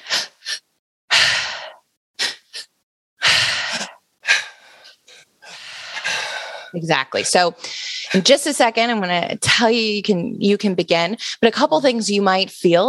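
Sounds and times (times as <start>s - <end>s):
forceful rhythmic breathing in a belly inhale, chest inhale, long exhale pattern: 0.0s - 8.5s
speech: 6.7s - 12.8s.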